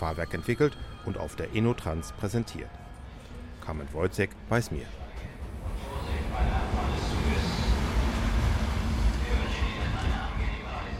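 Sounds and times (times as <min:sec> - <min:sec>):
speech: 0:00.0 - 0:02.9, 0:03.6 - 0:05.0
train rolling on rails at about 80 km/h: 0:05.0 - 0:10.9.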